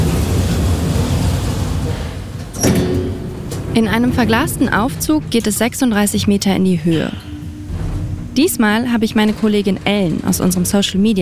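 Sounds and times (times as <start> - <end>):
low mechanical rumble: 0.0 - 11.2
door closing with a sharp thud and metallic ring: 2.4 - 3.8
speech: 3.8 - 7.3, 8.4 - 11.2.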